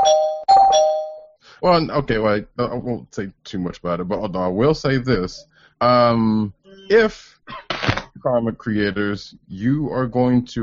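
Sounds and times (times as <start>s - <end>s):
two-note bell chime like a doorbell ding-dong: 0.0s - 1.4s
speech: 1.6s - 10.6s.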